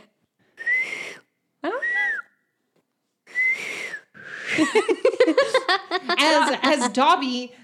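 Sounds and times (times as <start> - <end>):
woman reverse whistling by drawing air in: 0.6 - 2.5, 3.3 - 4.6
speech: 4.6 - 5.1, 6.2 - 7.6.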